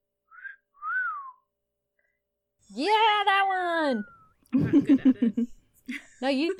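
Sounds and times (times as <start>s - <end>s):
person wolf whistling imitating a male booby: 0.2s - 1.5s
speech: 3.9s - 6.5s.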